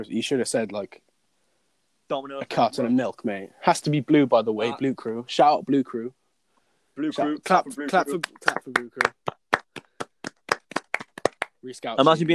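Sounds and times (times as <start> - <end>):
speech: 0.0 - 1.1, 2.1 - 6.2, 7.0 - 9.2, 11.6 - 12.3
sharp hand claps in a steady rhythm: 7.8 - 11.6.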